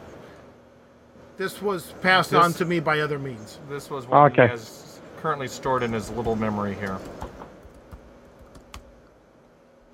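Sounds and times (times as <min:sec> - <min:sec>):
speech: 0:01.4 - 0:07.3
typing on a new slim Apple computer keyboard: 0:06.2 - 0:08.9.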